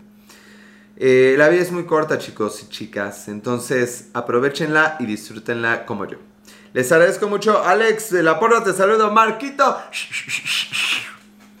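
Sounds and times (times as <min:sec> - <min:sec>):
speech: 0:01.0 - 0:11.1
person trying to whistle with breathy puffs of air: 0:09.9 - 0:11.3.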